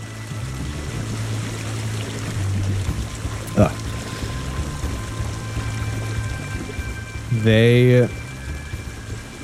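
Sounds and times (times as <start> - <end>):
rain-like water pouring and splashing: 0.0 - 9.4
speech: 3.6 - 3.8, 7.4 - 8.2.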